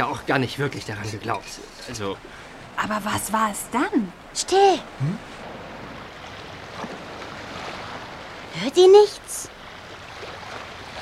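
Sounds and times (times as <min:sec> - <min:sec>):
speech: 0:00.0 - 0:05.4, 0:08.6 - 0:09.6
waves splashing against cliffs of a rocky island: 0:04.2 - 0:11.0.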